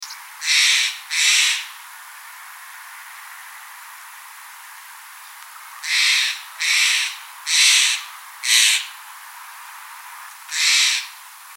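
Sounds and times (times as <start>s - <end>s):
Steller's jay harsh scratchy kwesh calls: 0.0s - 1.8s, 5.8s - 9.0s, 10.5s - 11.2s
steady background hiss: 0.0s - 11.5s.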